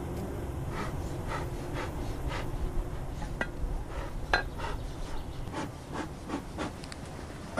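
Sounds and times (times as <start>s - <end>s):
honeybees Apis mellifera buzzing at an open hive: 0.0s - 7.5s.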